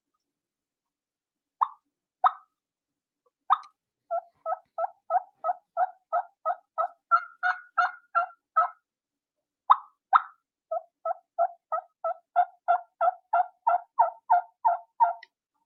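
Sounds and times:
hen turkey clucks imitated on a mouth call: 1.6s - 2.6s, 3.5s - 8.8s, 9.7s - 15.4s.

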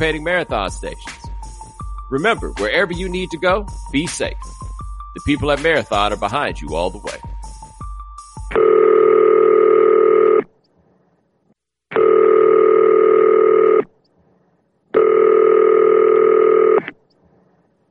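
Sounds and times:
speech: 0.0s - 1.2s, 2.1s - 4.6s, 5.2s - 7.3s
telephone ringing before a voicemail greeting: 8.5s - 10.4s, 12.0s - 13.8s, 15.0s - 16.8s.

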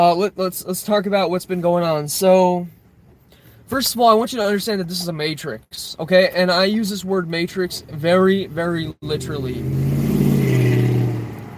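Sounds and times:
speech: 0.0s - 2.8s, 3.7s - 9.8s
car engine roaring past: 9.1s - 11.5s.

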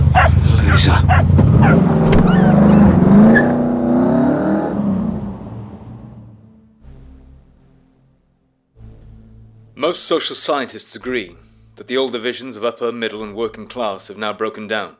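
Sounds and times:
car engine revving and pulling away: 0.0s - 6.6s
speech: 0.8s - 2.1s, 9.9s - 14.9s.

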